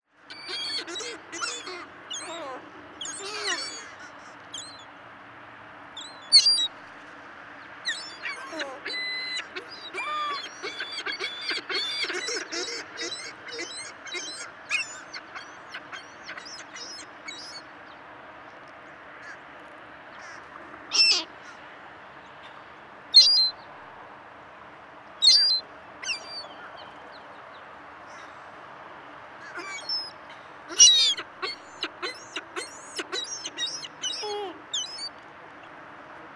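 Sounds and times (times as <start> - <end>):
Ring-billed gull Larus delawarensis calling: 0.3 - 4.8, 6.0 - 6.7, 7.8 - 17.7, 20.2 - 21.3, 23.1 - 23.6, 25.2 - 26.6, 29.4 - 35.1.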